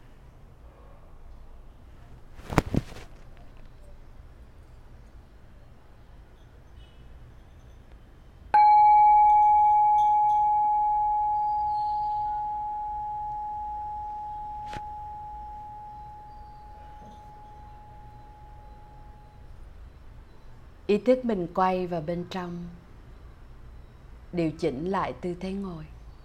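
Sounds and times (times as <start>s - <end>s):
single meditation bell struck and ringing: 8.6s - 19.6s
speech: 20.9s - 22.8s, 24.3s - 25.9s.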